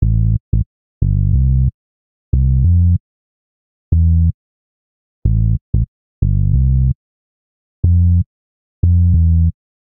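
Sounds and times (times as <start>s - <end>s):
bassline in A minor: 0.0s - 3.0s, 3.9s - 4.4s, 5.2s - 7.0s, 7.8s - 9.6s.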